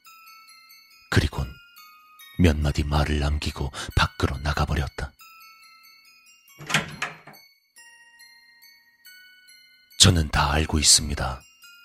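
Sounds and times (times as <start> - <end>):
speech: 2.4 - 5.1, 10.1 - 11.5
front door opening: 6.6 - 7.4.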